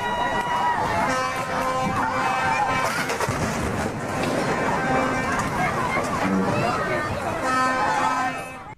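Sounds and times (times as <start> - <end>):
crowd shouting and babble: 0.0 - 8.7
duck boat crashing into a pier: 0.4 - 8.3
sustained horn-like tones: 0.8 - 3.2, 4.2 - 8.7.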